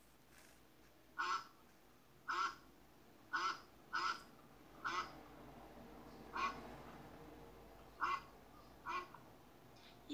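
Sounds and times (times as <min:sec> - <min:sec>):
duck quacking with short raspy calls: 0:01.2 - 0:01.5, 0:02.3 - 0:02.6, 0:03.3 - 0:04.2, 0:04.8 - 0:05.1, 0:06.3 - 0:06.6, 0:08.0 - 0:09.2.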